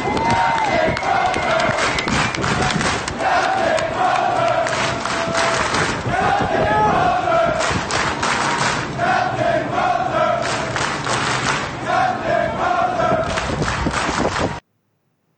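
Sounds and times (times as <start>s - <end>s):
rhythmic clapping: 0.0s - 6.4s, 7.5s - 9.0s, 10.4s - 11.8s, 13.2s - 14.6s
crowd of hundreds of sailors chanting in unison: 0.0s - 13.7s.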